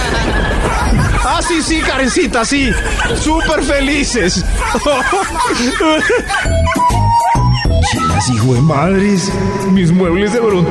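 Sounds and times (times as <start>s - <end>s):
laughter: 0.0s - 9.4s
speech: 1.7s - 10.6s
dog whimpering: 2.6s - 3.6s, 4.4s - 8.8s.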